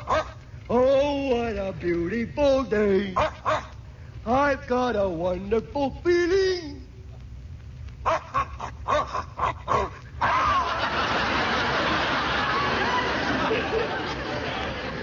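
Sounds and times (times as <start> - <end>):
dog barking: 0.0 - 0.4, 3.2 - 3.8, 8.0 - 10.6
noise: 0.0 - 15.0
speech: 1.7 - 3.3, 4.2 - 6.5
laughter: 10.2 - 15.0.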